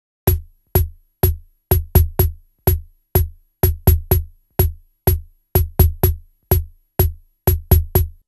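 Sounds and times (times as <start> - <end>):
tango rhythm: 0.3 - 8.2.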